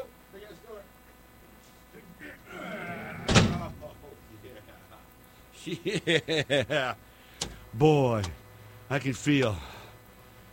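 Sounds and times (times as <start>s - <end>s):
laughter: 2.0s - 7.0s
heavy door swinging and slamming shut: 3.2s - 3.9s
speech: 5.6s - 9.7s.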